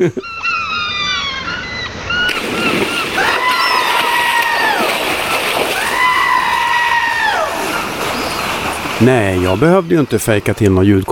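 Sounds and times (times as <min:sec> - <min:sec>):
speech: 0:00.0 - 0:00.4, 0:09.0 - 0:11.1
water splashing from a person jumping into water: 0:02.3 - 0:11.1
vocal whoops: 0:03.1 - 0:05.0, 0:05.7 - 0:08.0.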